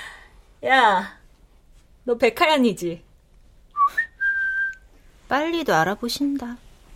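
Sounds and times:
speech: 0.7s - 1.2s, 2.1s - 3.1s, 5.3s - 6.7s
human whistle with rising chirp and held note: 3.7s - 4.9s.

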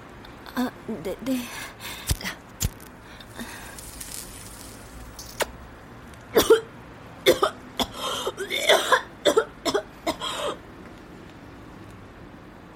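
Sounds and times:
speech: 0.6s - 1.6s
person coughing after smoking a cigarette: 7.3s - 10.6s.

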